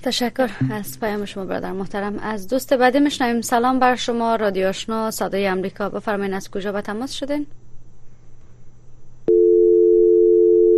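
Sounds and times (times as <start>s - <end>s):
speech: 0.0s - 7.6s
telephone dial tone after a dropped call: 9.3s - 10.7s.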